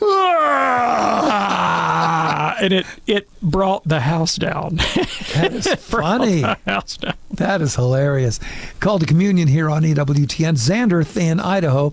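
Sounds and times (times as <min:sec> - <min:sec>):
person imitating a small boy's very loud yawn: 0:00.0 - 0:03.0
speech: 0:02.6 - 0:11.9
laughter: 0:04.8 - 0:07.3.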